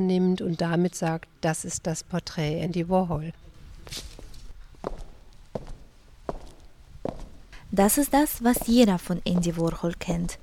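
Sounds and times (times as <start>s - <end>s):
speech: 0.0s - 4.1s, 7.0s - 10.4s
footsteps walking through an art museum: 3.5s - 10.4s.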